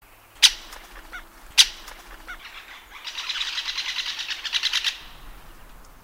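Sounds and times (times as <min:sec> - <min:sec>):
Great spotted woodpecker rapid buzzy chattering of high pulses: 0:00.4 - 0:05.2
Great spotted woodpecker sharp loud kik calls: 0:00.4 - 0:05.9.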